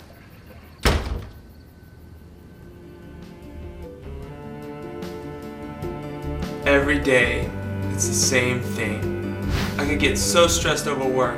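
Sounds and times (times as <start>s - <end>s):
door slamming shut: 0.8s - 1.5s
soft steady tonal sounds: 1.4s - 11.3s
speech: 6.7s - 9.1s, 9.8s - 11.3s.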